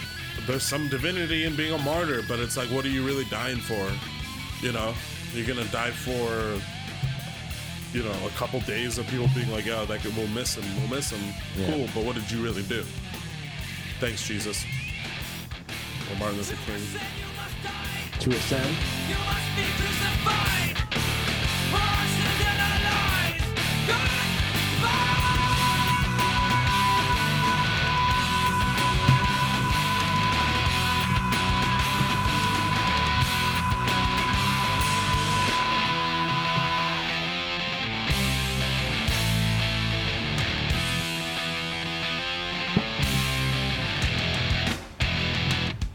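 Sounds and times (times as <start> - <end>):
loud dense rock music with heavy guitars and drums: 0.0 - 45.9
speech: 0.5 - 6.8, 7.9 - 13.1, 14.0 - 14.8, 16.1 - 20.8
long sustained screamed vocal note: 23.9 - 37.4.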